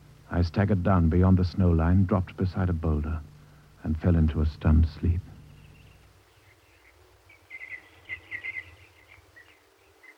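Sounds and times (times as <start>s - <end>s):
low steady rumble: 0.0s - 10.1s
speech: 0.3s - 5.3s
birds singing at a distance: 4.8s - 10.1s.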